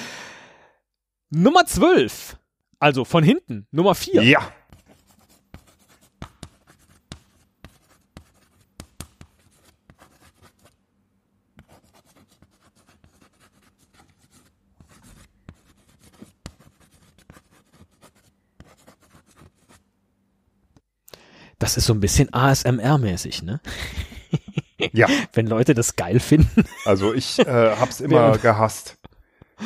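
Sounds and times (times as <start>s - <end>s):
speech: 1.3s - 4.6s, 21.7s - 24.1s, 24.8s - 29.0s
chalk scratching and tapping on a blackboard: 4.7s - 10.8s, 11.6s - 19.8s
laughter: 23.7s - 25.4s, 26.2s - 29.6s.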